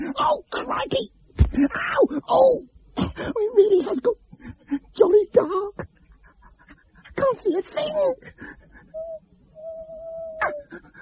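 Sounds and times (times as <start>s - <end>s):
speech: 0.2s - 4.2s, 7.4s - 8.3s
owl hooting in a dark wood: 8.9s - 10.7s.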